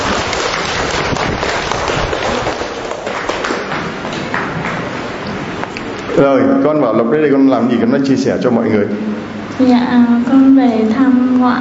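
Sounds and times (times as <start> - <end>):
crowd applauding: 0.0 - 5.2
speech: 6.2 - 11.6.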